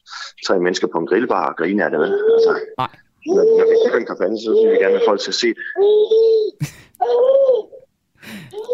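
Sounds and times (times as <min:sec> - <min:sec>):
speech: 0:00.3 - 0:08.7
baby girl babbling: 0:02.0 - 0:07.8, 0:08.5 - 0:08.7.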